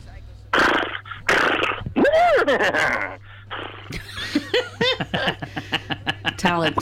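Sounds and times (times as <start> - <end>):
person imitating horse whinnies and snorts with their voice: 0.9 - 3.2
speech: 2.5 - 3.2, 3.9 - 6.8
laughter: 3.9 - 6.8.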